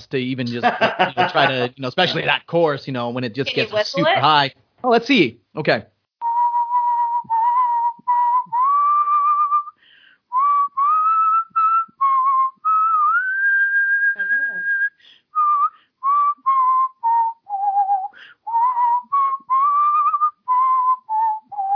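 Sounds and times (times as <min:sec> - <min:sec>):
speech: 0:00.0 - 0:05.9
laughter: 0:00.4 - 0:02.5, 0:03.5 - 0:04.4
person whistling a Christmas carol melody: 0:06.2 - 0:21.7.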